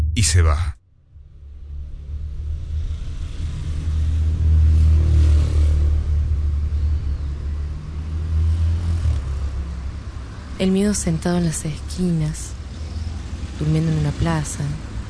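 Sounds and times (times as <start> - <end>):
speech: 0.2 - 0.8, 10.6 - 12.6, 13.6 - 14.9
car engine revving as the vehicle accelerates: 1.6 - 15.0.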